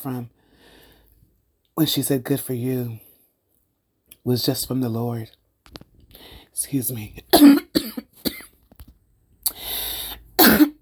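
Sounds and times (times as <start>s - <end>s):
speech: 0.0s - 0.4s, 1.8s - 3.0s, 4.2s - 7.6s
person coughing: 7.3s - 8.5s, 10.4s - 10.7s.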